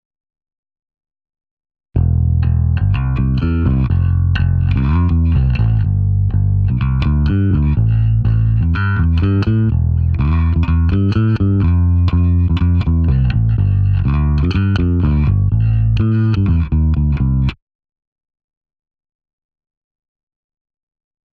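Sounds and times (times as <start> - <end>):
wet bass: 2.0 - 17.6.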